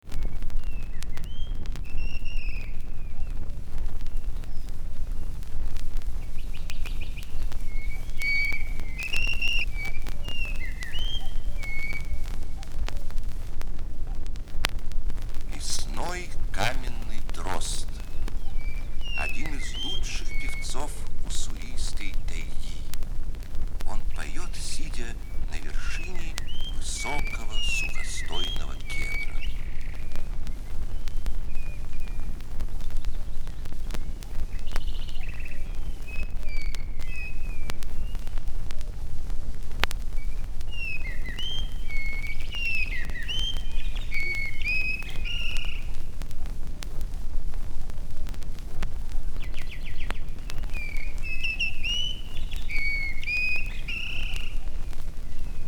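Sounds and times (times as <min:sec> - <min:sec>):
bird voices in nature: 0:00.0 - 0:55.6.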